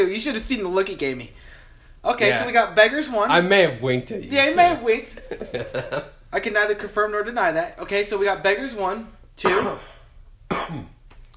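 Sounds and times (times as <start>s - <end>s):
speech: 0.0s - 9.9s, 10.5s - 10.9s
laughter: 5.2s - 6.1s
person coughing with a throaty rasp: 9.4s - 11.0s.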